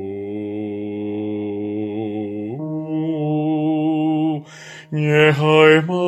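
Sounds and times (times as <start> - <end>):
bass lullaby: 2.0 - 5.9.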